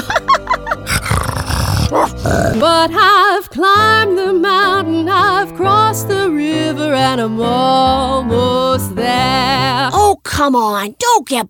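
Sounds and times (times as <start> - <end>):
dogs growling and snarling: 0.8 - 2.6
speech: 2.6 - 11.4.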